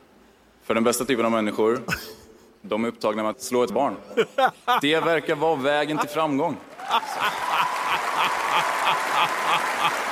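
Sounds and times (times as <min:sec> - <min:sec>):
speech: 0:00.7 - 0:07.6, 0:08.2 - 0:10.1
laughter: 0:04.0 - 0:10.1
audience clapping and cheering in rhythm: 0:06.5 - 0:10.1.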